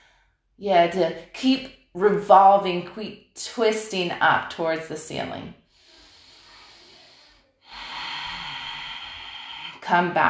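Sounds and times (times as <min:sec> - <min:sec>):
speech: 0:00.6 - 0:05.6, 0:09.9 - 0:10.2
long breath out during a yoga session: 0:05.7 - 0:09.9.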